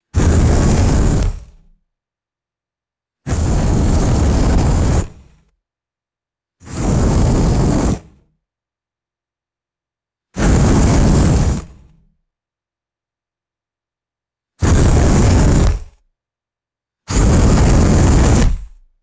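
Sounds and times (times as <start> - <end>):
short airy fire flame bursts: 0.2 - 1.7, 3.3 - 5.3, 6.7 - 8.2, 10.4 - 12.0, 14.6 - 16.0, 17.1 - 18.8.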